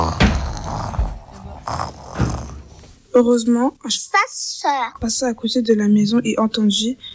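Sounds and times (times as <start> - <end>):
person imitating a wolf snoring: 0.0 - 2.7
speech: 3.2 - 7.1.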